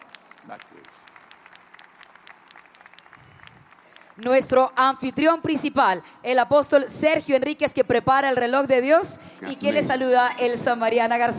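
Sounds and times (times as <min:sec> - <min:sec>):
audience applause: 0:00.0 - 0:04.2
speech: 0:00.5 - 0:01.1, 0:04.2 - 0:11.3.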